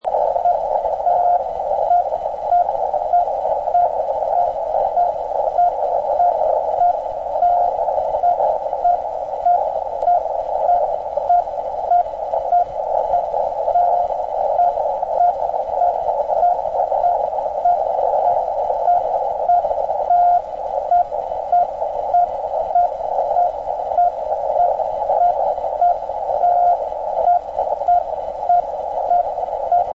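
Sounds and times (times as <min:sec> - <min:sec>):
6940 kHz Link11 CW mode Doppler tone: 0:00.0 - 0:29.9.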